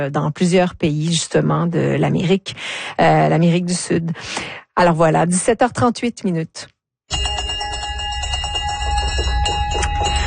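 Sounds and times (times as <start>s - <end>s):
speech: 0.0s - 7.2s
bell ringing rapidly: 7.1s - 10.2s.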